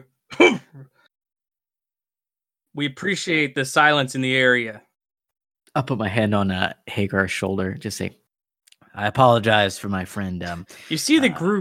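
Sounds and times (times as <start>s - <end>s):
bartender coughing pointedly with throat-clearing rasp: 0.3s - 0.9s
speech: 2.8s - 4.9s, 5.8s - 8.2s, 9.0s - 11.5s.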